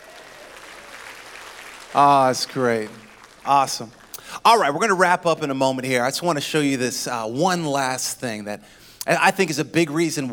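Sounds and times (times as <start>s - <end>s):
audience applause: 0.0s - 4.2s
speech: 1.9s - 10.3s.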